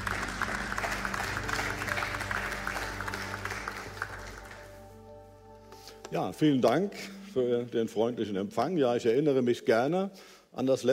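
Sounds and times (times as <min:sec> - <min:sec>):
audience applause in a reverberant hall: 0:00.0 - 0:04.8
speech: 0:06.1 - 0:10.9.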